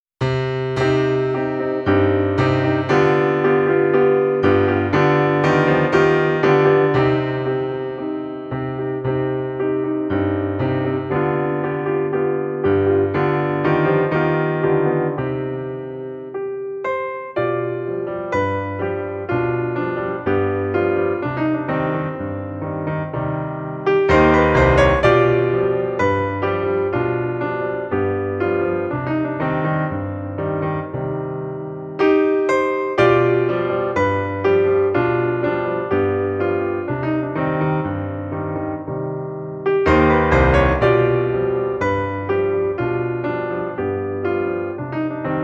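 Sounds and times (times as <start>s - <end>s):
solo piano: 0.1s - 45.4s.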